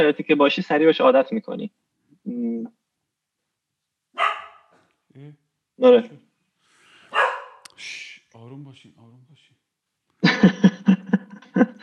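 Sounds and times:
speech: 0:00.0 - 0:02.8, 0:05.2 - 0:06.2, 0:07.8 - 0:09.5, 0:10.2 - 0:11.8
dogs barking: 0:04.2 - 0:04.7, 0:07.1 - 0:07.6
laughter: 0:10.2 - 0:11.8.

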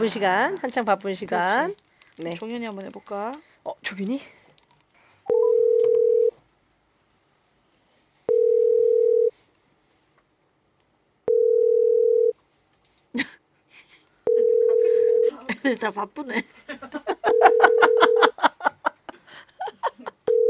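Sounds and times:
speech: 0:00.0 - 0:04.4, 0:15.6 - 0:17.1
phone line ringback tones: 0:05.3 - 0:06.4, 0:08.3 - 0:09.3, 0:11.3 - 0:12.4, 0:14.3 - 0:15.4, 0:17.2 - 0:18.3, 0:20.3 - 0:20.4
laughter: 0:16.4 - 0:20.4.

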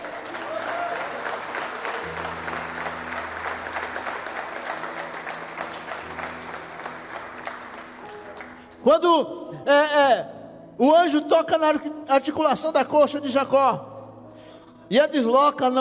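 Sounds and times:
audience applauding: 0:00.0 - 0:08.8
speech: 0:08.8 - 0:13.9, 0:14.9 - 0:15.7.

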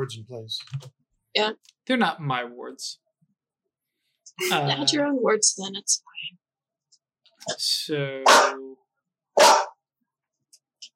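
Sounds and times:
speech: 0:00.0 - 0:03.0, 0:04.3 - 0:06.4, 0:07.4 - 0:08.8
dog barking: 0:08.2 - 0:08.7, 0:09.4 - 0:09.8.

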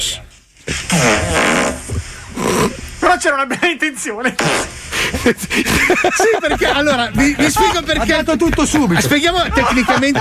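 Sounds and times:
recorded fart played from a phone's small speaker: 0:00.7 - 0:02.8, 0:04.4 - 0:04.8
speech: 0:00.9 - 0:01.6, 0:03.2 - 0:10.2
laughter: 0:04.2 - 0:10.2.

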